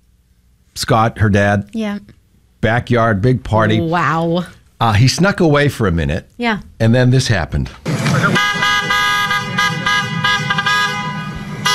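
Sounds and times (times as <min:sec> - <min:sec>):
speech: 0:00.8 - 0:08.5
brand-new Jeep's horn honking as it drives down a driveway: 0:07.9 - 0:11.7.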